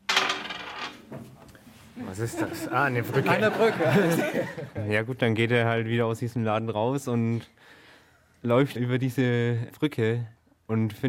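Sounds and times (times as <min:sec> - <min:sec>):
story dice clattering onto a hard surface: 0:00.1 - 0:01.1
laughter: 0:02.0 - 0:04.9
speech: 0:02.0 - 0:07.8, 0:08.4 - 0:11.0.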